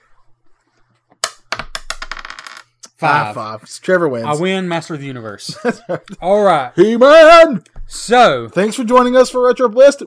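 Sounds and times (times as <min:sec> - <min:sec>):
die rolling on a hard tabletop: 0:01.1 - 0:02.8
speech: 0:03.0 - 0:10.0
laughter: 0:05.4 - 0:06.4.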